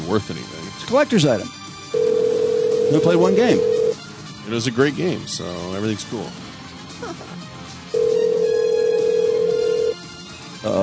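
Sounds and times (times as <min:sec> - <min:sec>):
speech: 0:00.1 - 0:01.6, 0:02.9 - 0:03.7, 0:04.5 - 0:07.3, 0:10.6 - 0:10.8
telephone tone before voicemail picks up: 0:02.0 - 0:04.0, 0:08.0 - 0:10.0.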